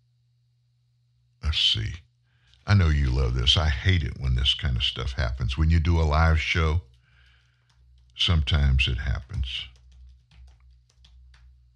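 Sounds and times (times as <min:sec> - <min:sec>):
steady low hum: 0:00.0 - 0:11.7
speech: 0:01.5 - 0:02.0, 0:02.6 - 0:06.9, 0:08.2 - 0:09.7
someone typing on a computer keyboard: 0:06.8 - 0:11.6.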